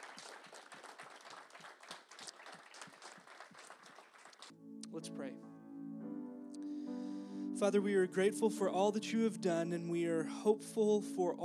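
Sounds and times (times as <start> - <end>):
crowd applauding: 0.0 - 4.5
speech: 4.9 - 5.5, 7.6 - 11.4.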